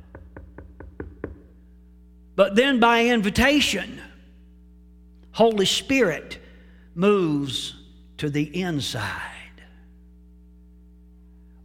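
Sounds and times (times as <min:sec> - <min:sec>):
knocking on a door: 0:00.0 - 0:01.5
low steady hum: 0:00.0 - 0:11.6
speech: 0:02.4 - 0:04.1, 0:05.4 - 0:06.4, 0:07.0 - 0:09.3.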